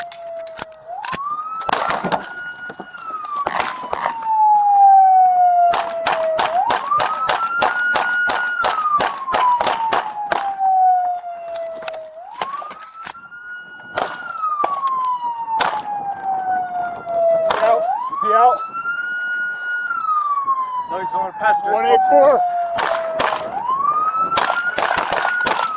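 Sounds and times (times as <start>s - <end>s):
police siren wailing during a car chase: 0.0s - 25.7s
sharp cracking bangs and rattles: 3.4s - 4.2s, 5.7s - 10.6s, 13.9s - 14.9s, 15.6s - 15.9s, 22.8s - 23.6s, 24.3s - 25.7s.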